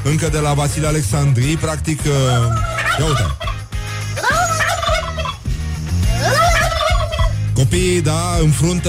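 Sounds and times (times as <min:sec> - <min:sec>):
speech: 0:00.0 - 0:03.5, 0:07.6 - 0:08.8
steady musical background: 0:00.0 - 0:08.8
radio listeners imitating turkey gobbling: 0:02.2 - 0:07.5.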